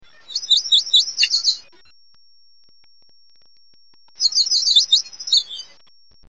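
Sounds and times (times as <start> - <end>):
yellow warbler singing: 0.2 - 1.6, 4.2 - 5.8.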